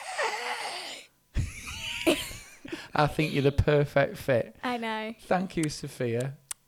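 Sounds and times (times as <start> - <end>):
child yawning on request: 0.0 - 1.2
laughter: 1.4 - 3.8
speech: 3.0 - 4.4, 5.1 - 6.4.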